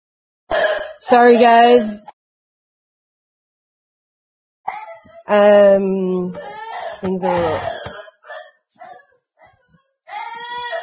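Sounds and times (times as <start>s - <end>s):
speech: 1.0s - 2.1s, 5.3s - 7.8s
dog barking with odd hoarse barks: 8.3s - 9.7s.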